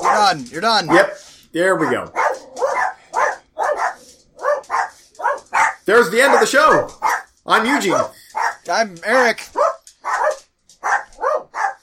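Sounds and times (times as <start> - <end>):
dog barking: 0.0 - 1.2, 1.8 - 7.3, 8.4 - 8.7, 9.5 - 11.8
speech: 0.2 - 2.2, 5.9 - 9.6.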